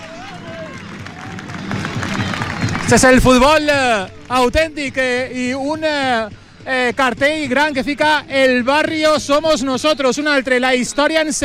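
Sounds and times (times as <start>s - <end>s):
large football crowd roaring and cheering: 0.0s - 2.8s
large football crowd clapping: 0.0s - 5.0s
speech: 2.9s - 11.4s.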